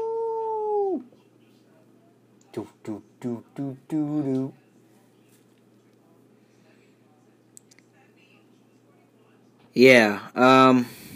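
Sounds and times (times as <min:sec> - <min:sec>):
dog howling: 0:00.0 - 0:01.1
speech: 0:02.6 - 0:04.6, 0:09.8 - 0:11.0.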